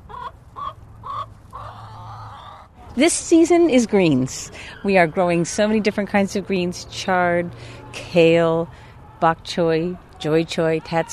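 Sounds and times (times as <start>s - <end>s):
chickens clucking in a movable coop: 0.0s - 2.7s
low outdoor hum: 0.0s - 11.1s
speech: 3.0s - 11.1s.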